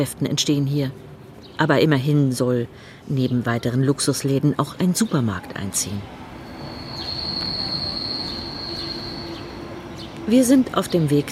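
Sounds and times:
speech: 0.0 - 6.2, 10.3 - 11.3
low rumble of rolling railcars: 6.0 - 11.3
S-Bahn train wheels squealing on tracks above Stadtbahn arches in Berlin: 6.4 - 9.9.

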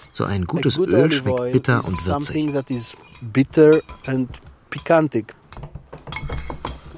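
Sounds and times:
speech: 0.2 - 5.8
dishes and glasses clinking at a table: 0.7 - 6.9.

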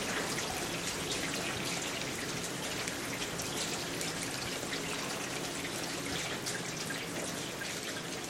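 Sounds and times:
rain dripping and pattering: 0.0 - 8.2.

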